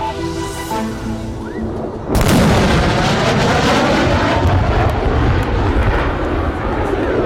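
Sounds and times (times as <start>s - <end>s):
F-16 fighter jet roaring overhead: 0.2s - 7.2s
sonic boom of F-16 fighter jet breaking the sound barrier: 1.3s - 6.7s.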